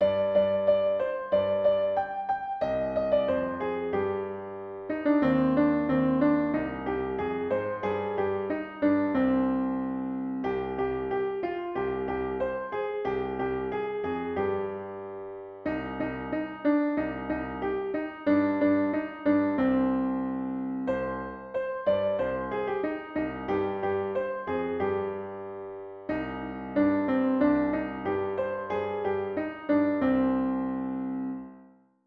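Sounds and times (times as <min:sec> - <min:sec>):
piano piece: 0:00.0 - 0:31.8.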